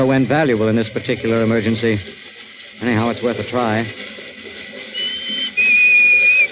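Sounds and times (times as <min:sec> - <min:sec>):
speech: 0:00.0 - 0:02.2, 0:02.8 - 0:04.1
shrill whistle blown: 0:04.9 - 0:06.5.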